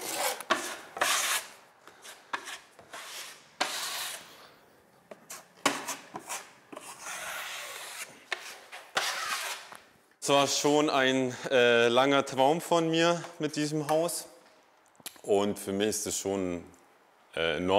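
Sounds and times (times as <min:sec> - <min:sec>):
hand-sanding a wall during interior work on a house: 0:00.0 - 0:04.4, 0:05.2 - 0:09.7
speech: 0:10.3 - 0:14.3, 0:15.2 - 0:16.8, 0:17.4 - 0:17.7.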